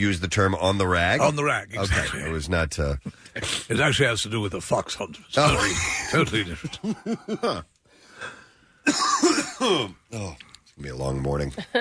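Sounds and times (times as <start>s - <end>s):
speech: 0.0s - 11.7s
laughter: 5.5s - 7.7s
person coughing: 8.9s - 10.0s.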